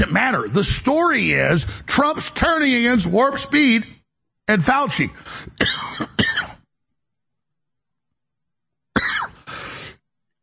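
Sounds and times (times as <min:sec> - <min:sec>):
speech: 0:00.0 - 0:06.4
man clearing his throat: 0:05.6 - 0:06.7, 0:08.9 - 0:09.5.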